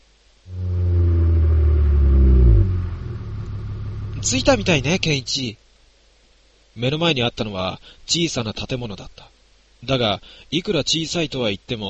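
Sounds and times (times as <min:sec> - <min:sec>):
bus engine rumbling while pulling up and stopping: 0:00.5 - 0:05.4
speech: 0:04.2 - 0:05.6, 0:06.8 - 0:11.8.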